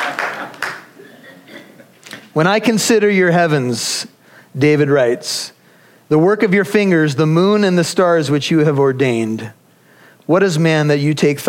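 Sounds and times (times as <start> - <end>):
audience clapping at a church sermon: 0.0 - 1.1
speech: 2.3 - 9.6, 10.3 - 11.4.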